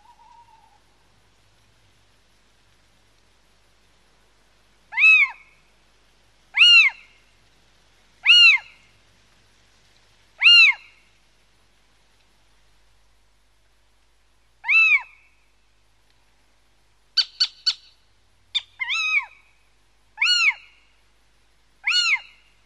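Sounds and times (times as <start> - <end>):
little owl mewing call rising and falling: 0.0 - 0.8, 4.9 - 5.5, 6.6 - 7.1, 8.2 - 8.7, 10.4 - 10.9, 14.6 - 15.2, 17.2 - 19.4, 20.2 - 20.8, 21.8 - 22.4.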